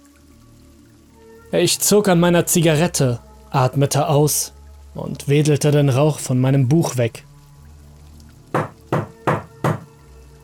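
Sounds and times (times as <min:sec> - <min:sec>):
speech: 0:01.5 - 0:07.3
knocks against a wall: 0:08.6 - 0:09.9.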